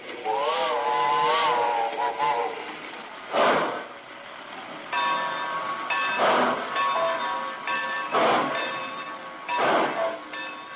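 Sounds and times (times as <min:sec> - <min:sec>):
hissing steam from a steam train pulling into a station: 0:00.0 - 0:10.7
steam train whistle blowing: 0:00.2 - 0:02.7, 0:09.6 - 0:10.3.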